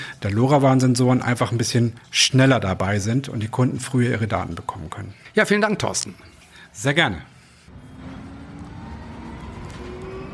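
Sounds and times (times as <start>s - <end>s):
speech: 0.2s - 7.3s
low constant road rumble inside a moving electric bus: 7.6s - 10.3s
faint rising electric motor whine of an electric bus: 7.7s - 10.3s.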